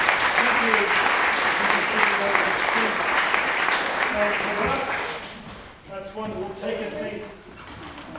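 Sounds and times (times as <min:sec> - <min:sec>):
sizeable crowd applauding: 0:00.0 - 0:05.4
speech: 0:06.2 - 0:07.4.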